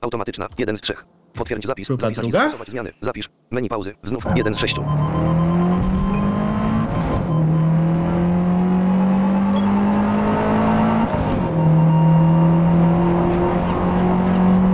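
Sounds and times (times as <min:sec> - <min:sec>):
speech: 0:00.0 - 0:05.4
racing game car engine droning through gear shifts: 0:04.3 - 0:14.7.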